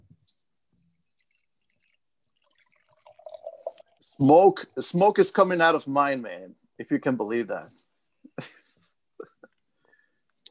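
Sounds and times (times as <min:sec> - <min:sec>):
drips: 0:00.7 - 0:05.0
drink pouring into a glass: 0:00.9 - 0:04.9
speech: 0:04.2 - 0:07.8.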